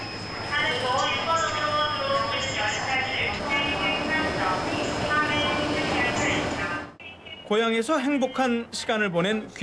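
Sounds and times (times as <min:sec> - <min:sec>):
constant high whine: 0:00.0 - 0:07.0
train rumble and hiss at Iksan Station platform: 0:00.0 - 0:07.0
speech: 0:07.5 - 0:09.6.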